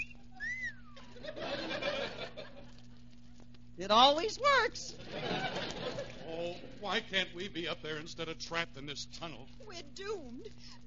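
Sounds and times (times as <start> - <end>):
wolf whistle at a passing woman: 0.0 - 1.1
steady low hum: 0.0 - 10.8
snickering laughter: 1.0 - 2.8
speech: 3.8 - 5.5, 6.8 - 10.8.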